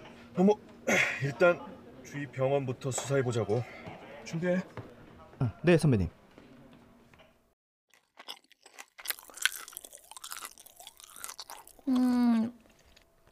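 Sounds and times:
speech: 0.4s - 4.8s, 5.4s - 6.2s
crunchy chewing of food: 7.9s - 13.3s.

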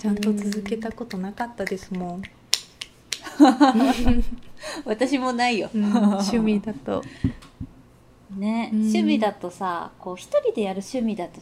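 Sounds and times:
speech: 0.0s - 2.4s, 3.4s - 7.5s, 8.3s - 11.4s
sharp hand claps: 0.0s - 3.4s
laughter: 3.2s - 4.5s.

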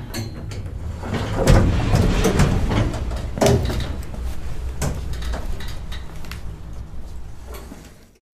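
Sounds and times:
elevator door sliding shut: 0.0s - 6.1s.

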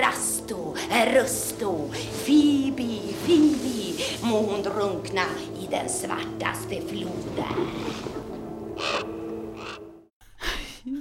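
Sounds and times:
low humming drone: 0.4s - 10.1s
speech: 0.5s - 8.2s
crow cawing: 8.8s - 9.9s.

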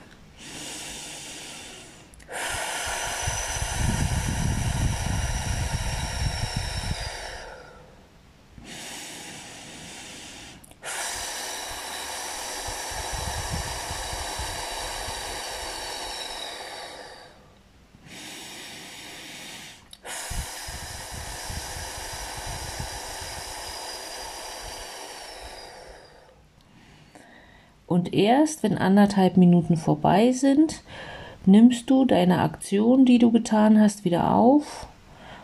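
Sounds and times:
slow deep labour contraction breathing: 0.0s - 27.9s, 30.8s - 31.5s, 35.1s - 35.4s
speech: 28.0s - 34.9s.

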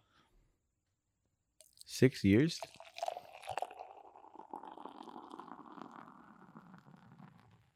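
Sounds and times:
beer pouring into a glass with foamy fizz: 1.6s - 7.7s
speech: 1.9s - 2.8s.

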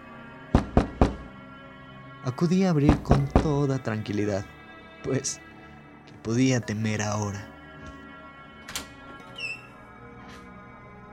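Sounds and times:
firm knocks on a wooden street door: 0.6s - 1.3s, 2.9s - 3.6s
speech: 2.2s - 5.5s, 6.2s - 7.5s.

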